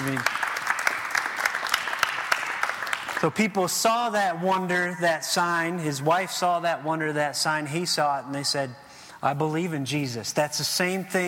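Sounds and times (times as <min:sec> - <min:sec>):
audience applause: 0:00.0 - 0:03.4
speech: 0:03.2 - 0:11.2.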